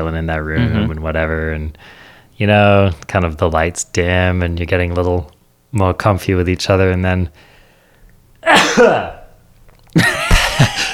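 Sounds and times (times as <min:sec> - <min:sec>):
speech: 0:00.0 - 0:07.5, 0:08.4 - 0:09.2, 0:10.0 - 0:10.9
loud sharp sneeze: 0:08.4 - 0:09.3.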